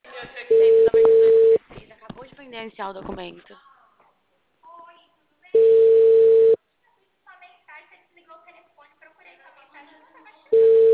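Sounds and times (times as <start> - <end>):
ringing tones of an outgoing phone call: 0.5 - 1.6, 5.6 - 6.6, 10.5 - 10.9
speech: 2.5 - 3.7.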